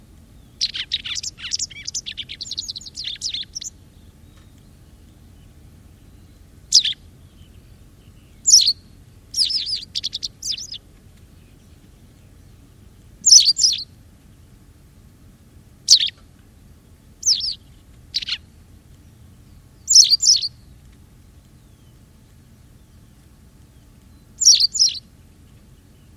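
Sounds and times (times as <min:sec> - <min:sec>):
faint background noise: 0:00.0 - 0:26.1
white wagtail giving sharp calls: 0:00.4 - 0:14.0, 0:15.9 - 0:16.2, 0:17.2 - 0:20.7, 0:22.7 - 0:26.1.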